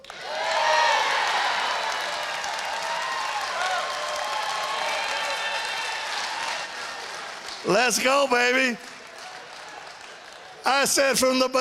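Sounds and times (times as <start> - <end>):
audience cheering and shouts: 0.0 - 11.0
large audience applause: 0.0 - 11.4
speech: 7.6 - 8.9, 10.6 - 11.5.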